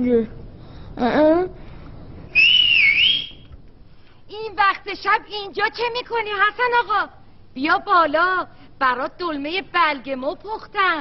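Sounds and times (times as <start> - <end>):
speech: 0.0 - 0.4, 1.0 - 1.6, 4.6 - 11.0
person whistling: 2.3 - 3.5.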